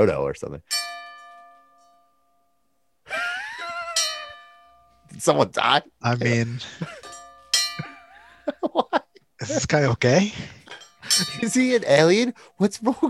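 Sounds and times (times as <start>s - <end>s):
speech: 0.0s - 0.8s, 5.2s - 7.0s, 9.4s - 13.0s
metal bell rung as a ten-bell salute: 0.6s - 5.4s, 6.3s - 8.5s, 10.6s - 13.0s
laughter: 3.1s - 4.4s, 6.4s - 7.1s, 7.8s - 11.5s.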